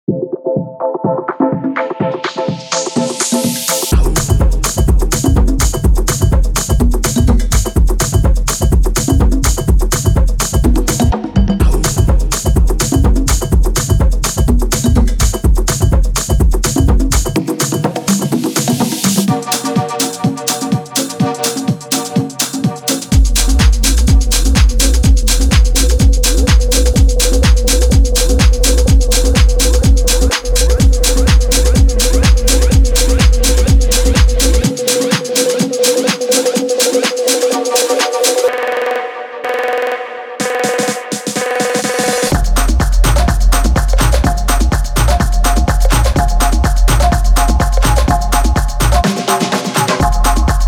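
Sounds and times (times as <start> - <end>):
percussive tech house music: 0.0 - 50.6.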